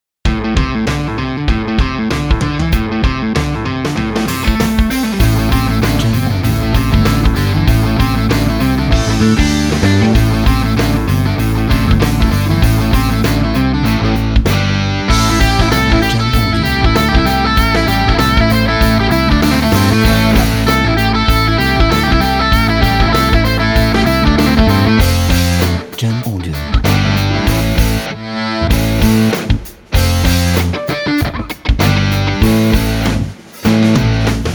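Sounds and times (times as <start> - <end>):
fast hard rock sport music: 0.2 - 34.5.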